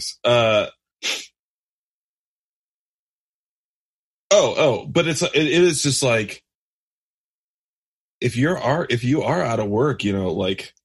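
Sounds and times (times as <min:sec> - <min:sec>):
speech: 0:00.0 - 0:01.2, 0:04.4 - 0:06.5, 0:08.2 - 0:10.8
person sneezing: 0:01.0 - 0:01.3.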